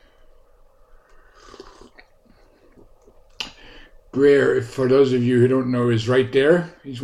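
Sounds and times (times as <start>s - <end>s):
slurping sip of tea from a mug: 1.2s - 2.1s
soft swallowing and mouth sounds: 1.3s - 3.3s
speech: 4.2s - 7.0s.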